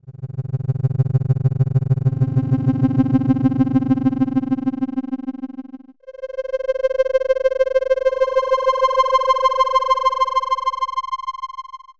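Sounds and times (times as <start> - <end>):
creeping sine tone: 0.0 - 11.9.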